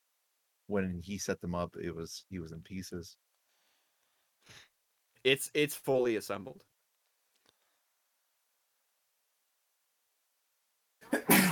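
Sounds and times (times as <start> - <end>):
speech: 0.7 - 3.3, 4.4 - 6.7
sneeze: 11.0 - 11.5.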